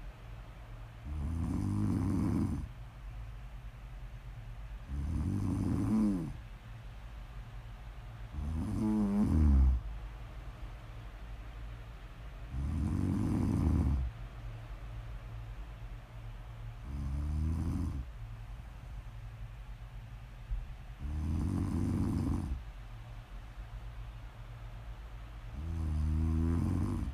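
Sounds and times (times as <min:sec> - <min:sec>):
faint steady low hum: 0:00.0 - 0:27.1
person snoring with a low rasping rumble: 0:01.1 - 0:02.7, 0:04.9 - 0:06.4, 0:08.3 - 0:09.8, 0:12.5 - 0:14.1, 0:16.8 - 0:18.1, 0:21.0 - 0:22.6, 0:25.6 - 0:27.1.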